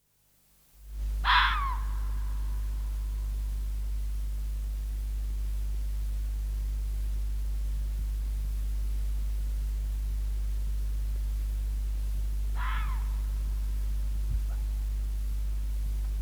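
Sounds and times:
low background hum: 0.6s - 16.1s
red fox screaming: 12.6s - 13.2s.

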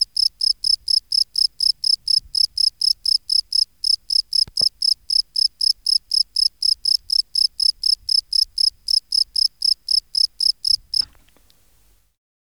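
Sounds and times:
Gryllus campestris field cricket chirping: 0.0s - 11.3s
faint click: 11.0s - 11.6s.

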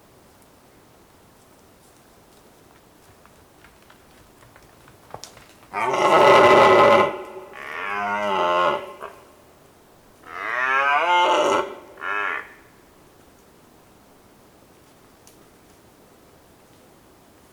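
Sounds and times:
red deer roaring on Volovec hill in Slovakia: 5.7s - 9.3s, 10.3s - 12.6s.

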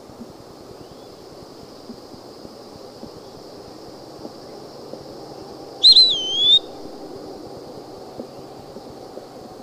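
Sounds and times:
low background hum: 0.0s - 9.6s
eastern wood-pewee whistled note: 5.8s - 6.7s.

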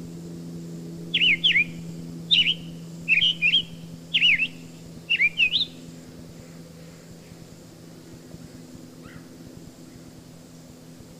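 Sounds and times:
steady low hum: 0.0s - 11.1s
Summer Tanager song: 1.1s - 5.9s.

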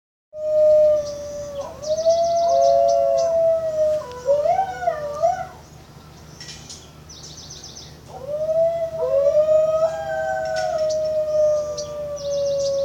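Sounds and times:
New Guinea singing dogs howling: 0.4s - 5.6s, 8.0s - 12.8s.

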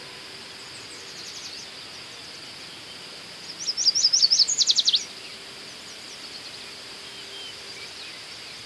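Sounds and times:
light background hiss: 0.0s - 8.6s
American yellow warbler Setophaga aestiva singing: 0.6s - 8.6s.

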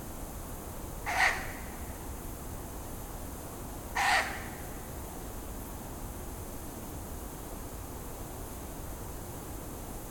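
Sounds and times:
low background hiss: 0.0s - 10.0s
Ural owl Strix uralensis giving harsh barking calls: 1.0s - 2.0s, 4.0s - 4.7s.

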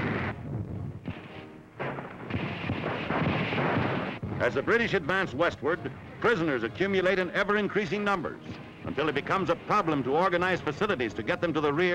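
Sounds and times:
artillery and tank fire during a desert battle: 0.0s - 0.4s, 1.1s - 4.6s
speech: 4.4s - 11.9s.

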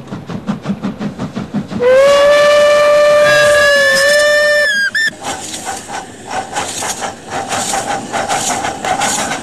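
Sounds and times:
steam train arriving at a small station chuffing: 0.0s - 9.4s
steam train steam whistle blowing: 1.8s - 5.1s.

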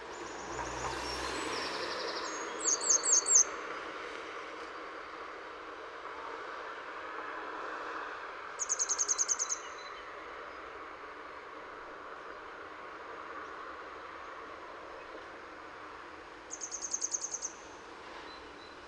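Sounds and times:
steady urban hum in Utrecht: 0.0s - 18.8s
grey wagtail calling in Utrecht: 8.6s - 9.6s, 16.5s - 17.6s.

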